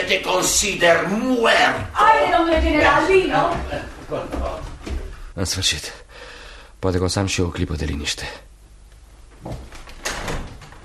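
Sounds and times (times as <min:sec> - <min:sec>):
speech: 0:00.1 - 0:04.7, 0:05.4 - 0:06.0, 0:06.8 - 0:08.5
locked door rattling against its frame: 0:09.7 - 0:10.8.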